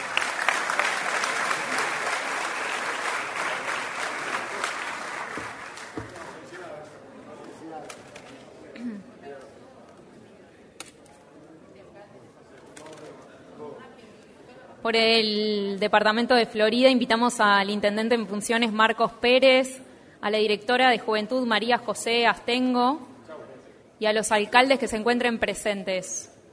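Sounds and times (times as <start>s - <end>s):
audience applause in an open space: 0.0s - 6.5s
speech: 14.9s - 23.1s, 24.0s - 26.3s.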